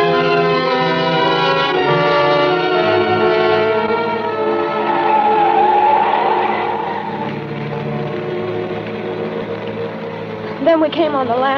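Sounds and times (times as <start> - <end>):
car engine roaring on a highway: 0.4 - 10.6
car tires squealing and skidding: 2.1 - 10.4
speech: 10.9 - 11.5.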